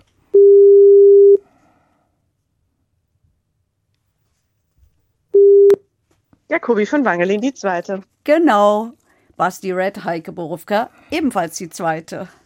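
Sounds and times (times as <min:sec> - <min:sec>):
steady electronic telephone tone while a call is placed: 0:00.3 - 0:01.4, 0:05.4 - 0:05.8
speech: 0:06.5 - 0:12.4.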